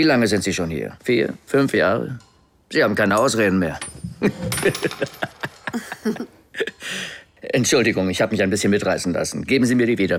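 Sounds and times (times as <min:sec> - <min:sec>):
speech: 0:00.0 - 0:05.3, 0:06.9 - 0:10.1
penny clattering on a table: 0:03.2 - 0:05.8.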